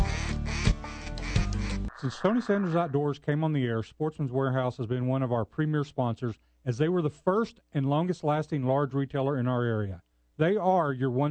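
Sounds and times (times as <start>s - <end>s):
high-ball duck call quacking in a hailing sequence: 0.0s - 2.9s
speech: 2.0s - 11.2s.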